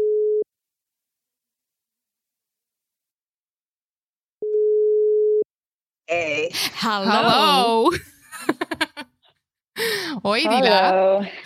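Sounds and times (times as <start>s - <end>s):
telephone ringing tone while placing a call: 4.5s - 5.4s
speech: 6.1s - 8.6s, 9.8s - 11.4s
laughter: 6.8s - 9.1s.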